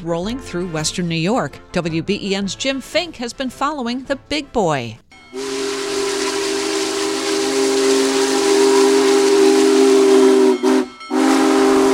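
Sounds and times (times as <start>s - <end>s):
speech: 0.0s - 5.4s
steam locomotive whistle blowing: 5.4s - 11.9s.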